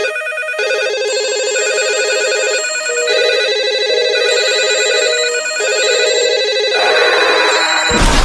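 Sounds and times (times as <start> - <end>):
various tones: 0.2 - 8.1.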